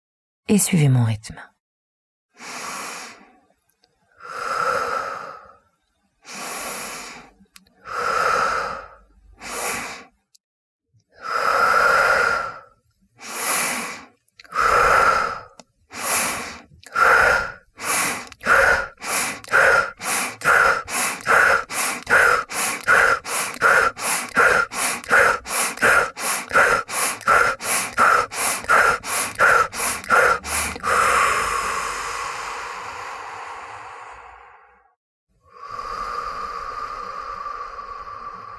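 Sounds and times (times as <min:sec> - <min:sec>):
speech: 0:00.5 - 0:01.5
breath of fire, rapid rhythmic yoga breathing through the nose: 0:02.3 - 0:03.4, 0:04.1 - 0:05.6, 0:06.2 - 0:10.2, 0:11.2 - 0:38.5.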